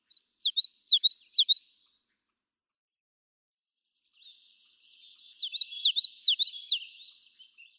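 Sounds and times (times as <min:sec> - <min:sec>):
Common Yellowthroat singing: 0:00.0 - 0:01.9, 0:04.0 - 0:07.7.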